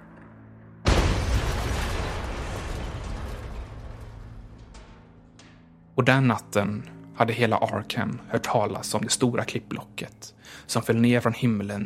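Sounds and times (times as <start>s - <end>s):
explosions in the air: 0.9s - 5.2s
low hum: 0.9s - 6.0s
speech: 6.0s - 11.8s.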